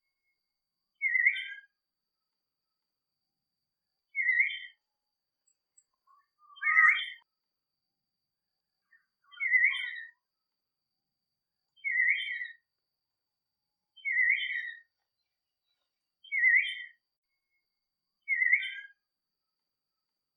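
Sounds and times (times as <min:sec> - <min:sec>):
person singing: 0:01.0 - 0:01.8, 0:04.1 - 0:04.8, 0:05.4 - 0:07.3, 0:08.9 - 0:10.2, 0:11.7 - 0:12.7, 0:14.0 - 0:17.6, 0:18.2 - 0:19.0.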